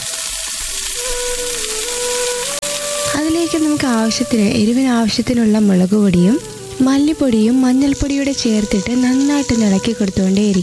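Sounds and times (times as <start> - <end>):
chopped onion sautéing in hot oil in a pan: 0.0 - 10.6
speech: 3.2 - 10.6.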